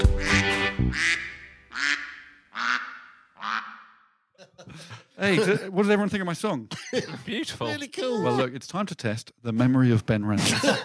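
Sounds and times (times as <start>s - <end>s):
voice imitating duck quacks in a song: 0.2s - 3.8s
laughter: 4.4s - 5.8s, 6.7s - 8.5s, 10.4s - 10.8s
speech: 5.2s - 10.8s.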